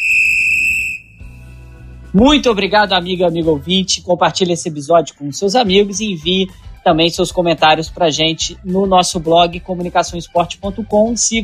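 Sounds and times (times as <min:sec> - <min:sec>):
referee's final whistle blast: 0:00.0 - 0:01.4
speech: 0:02.1 - 0:11.4.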